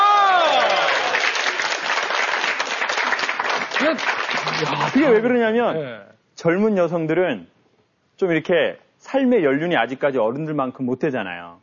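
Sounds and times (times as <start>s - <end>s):
people cheering: 0.0s - 5.2s
room full of people applauding: 0.0s - 5.2s
speech: 3.9s - 7.5s, 8.2s - 11.6s.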